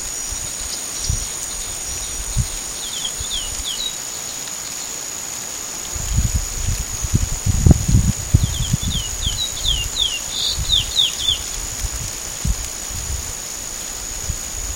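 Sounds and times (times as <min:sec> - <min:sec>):
high insect tone: 0:00.0 - 0:14.7
chestnut-bellied seed finch whistling song: 0:02.8 - 0:04.0, 0:08.4 - 0:11.5.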